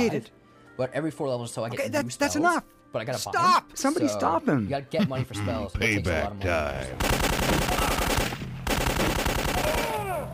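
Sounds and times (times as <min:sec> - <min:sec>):
speech: 0:00.0 - 0:07.2
rapid video-game machine-gun fire: 0:07.0 - 0:10.0.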